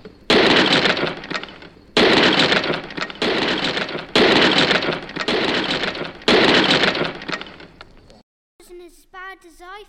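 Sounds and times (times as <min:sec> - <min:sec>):
hammer smashing giants' skulls: 0:00.0 - 0:07.8
crunching, rattling debris: 0:00.0 - 0:08.1.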